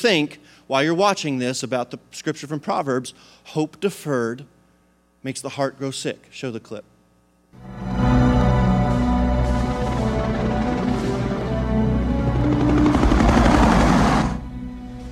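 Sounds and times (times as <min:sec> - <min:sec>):
speech: 0:00.0 - 0:04.6, 0:05.2 - 0:06.9
whining helicopter engine noise: 0:08.3 - 0:14.6
rotor thumping of Navy recovery and rescue helicopters circling overhead: 0:09.0 - 0:14.4.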